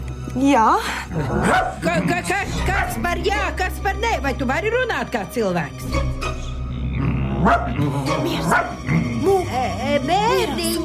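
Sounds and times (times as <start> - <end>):
speech: 0.4 - 6.2, 7.4 - 10.8
dogs barking and yipping inside a home: 1.3 - 2.0, 7.2 - 9.1.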